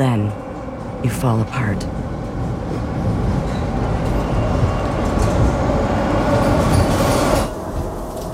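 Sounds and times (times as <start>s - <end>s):
speech: 0.0s - 0.4s, 1.0s - 2.1s
subway train rumbling as it pulls away: 0.0s - 8.3s.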